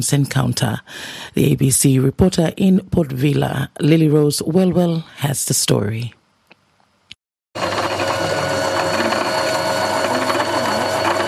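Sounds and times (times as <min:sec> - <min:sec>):
speech: 0:00.0 - 0:06.2
sewing machines whirring at a girls' sewing club in Vanuatu: 0:07.6 - 0:11.2.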